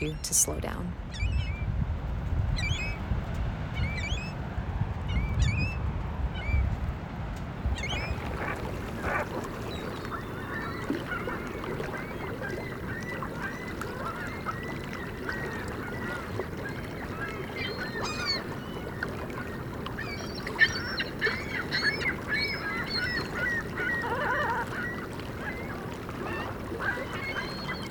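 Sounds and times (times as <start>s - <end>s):
speech: 0.0s - 1.4s
water: 0.0s - 27.8s
wind: 0.0s - 27.8s
ring-billed gulls calling: 7.6s - 27.8s.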